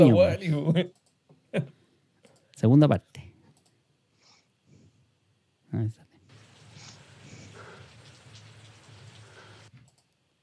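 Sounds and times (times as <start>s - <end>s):
speech: 0.0s - 1.8s, 2.6s - 3.2s, 5.7s - 6.0s
rain falling: 6.3s - 9.7s.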